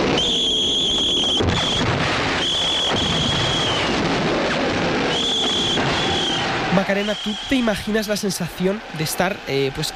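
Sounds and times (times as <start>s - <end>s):
shrill whistles blown to signal a military attack: 0.0s - 4.0s, 5.0s - 7.9s
booms: 0.0s - 6.8s
speech: 6.9s - 9.9s.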